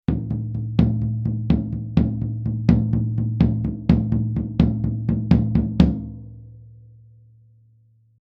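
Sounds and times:
tom drum recorded with Sennheiser MD421 microphone: 0:00.0 - 0:06.4.

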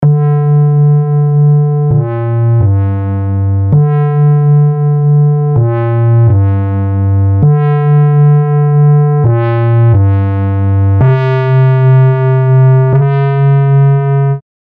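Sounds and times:
sad square wave synth bass with macro modulation: 0:00.0 - 0:14.4.

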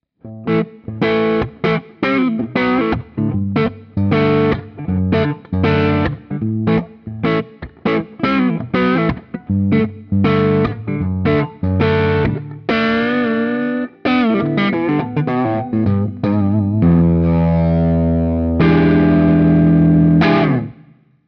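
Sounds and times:
Epiphone Les Paul electric guitar neck pickup crunch played fingerstyle: 0:00.2 - 0:21.0.

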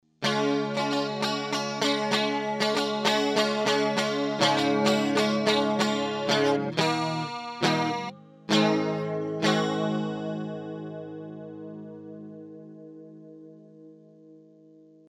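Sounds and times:
guitar with chorus effect: 0:00.0 - 0:15.0.

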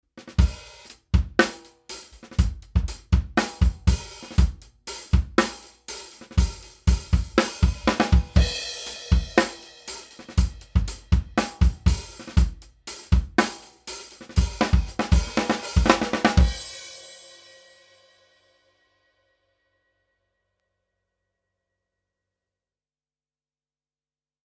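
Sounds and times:
drum kit through EQ with transformer: 0:00.2 - 0:17.8.

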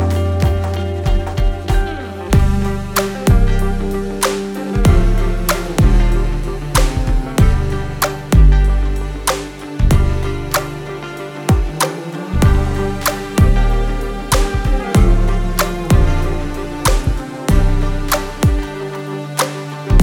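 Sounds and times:
drums: 0:00.0 - 0:20.0.

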